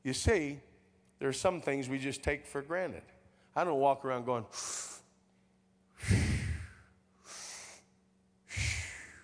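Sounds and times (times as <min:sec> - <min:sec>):
speech: 0:00.0 - 0:05.0
person breathing deeply in and out: 0:04.5 - 0:05.1, 0:06.0 - 0:09.2.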